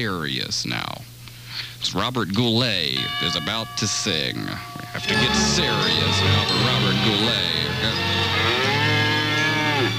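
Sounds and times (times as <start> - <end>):
speech: 0.0 - 1.0, 1.6 - 8.3
cow mooing: 7.7 - 9.9.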